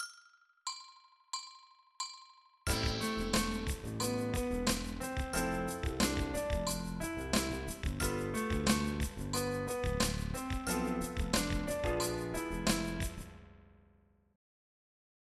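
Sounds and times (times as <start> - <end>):
backing track: 2.7 - 13.2.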